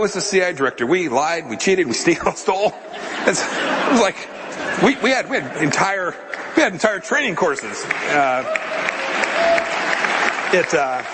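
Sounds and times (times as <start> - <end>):
speech: 0.0 - 9.6, 10.5 - 11.1
laughter: 1.8 - 11.1
audience applause for a speaker at a public event: 6.4 - 11.1.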